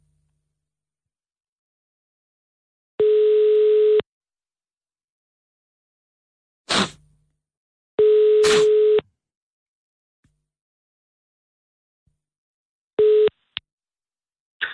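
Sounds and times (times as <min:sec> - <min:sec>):
telephone ringback tone for a call to a mobile phone: 0:03.0 - 0:04.0, 0:08.0 - 0:09.0, 0:13.0 - 0:13.4.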